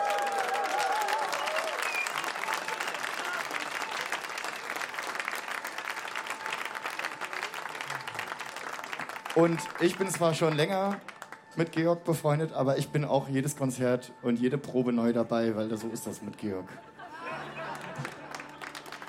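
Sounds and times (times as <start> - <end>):
whistle or cheer from crowd: 0.0 - 4.1
audience at a live performance applauding: 0.0 - 11.5, 17.2 - 19.0
speech: 9.4 - 16.9
laughter: 16.7 - 19.0.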